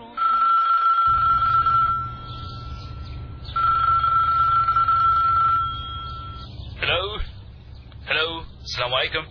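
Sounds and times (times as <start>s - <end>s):
mobile phone ringing at a lake: 0.0s - 6.5s
low rumbling background: 1.1s - 9.2s
speech: 8.9s - 9.2s.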